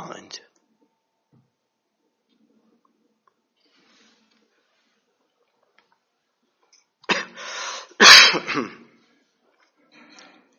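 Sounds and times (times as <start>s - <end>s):
coughing: 7.0s - 9.0s.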